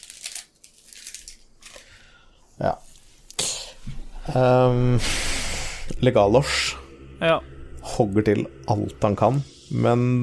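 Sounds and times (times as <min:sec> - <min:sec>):
book pages being flipped at a tabletop role-playing game session: 0:00.0 - 0:01.9
speech: 0:02.6 - 0:02.9, 0:04.3 - 0:05.3, 0:06.0 - 0:10.2.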